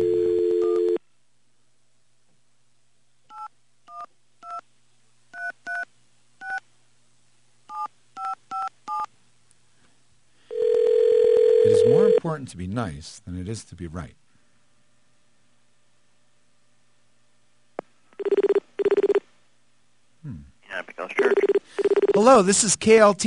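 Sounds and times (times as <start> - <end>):
steady phone tone: 0.0 - 1.0, 10.5 - 12.2, 18.2 - 19.2, 21.2 - 22.2
speech: 12.2 - 14.2, 22.3 - 23.2.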